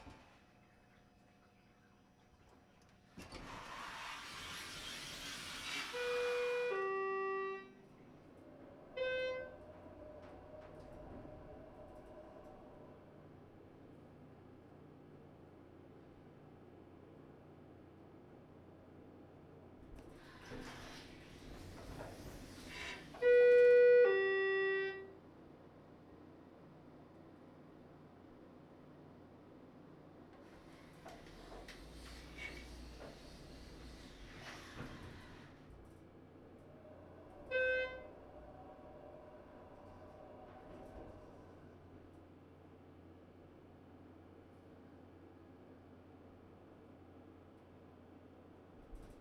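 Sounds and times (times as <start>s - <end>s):
hotel elevator: 3.2s - 13.9s, 19.9s - 25.3s, 30.3s - 42.5s.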